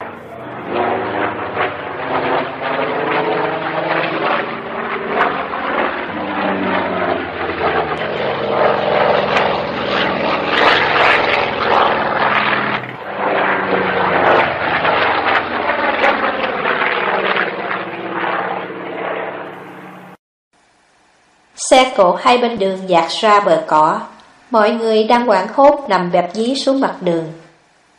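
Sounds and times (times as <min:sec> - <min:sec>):
two AD-6 attack aircraft engines roaring at low altitude: 0:00.0 - 0:20.2
speech: 0:21.8 - 0:27.4.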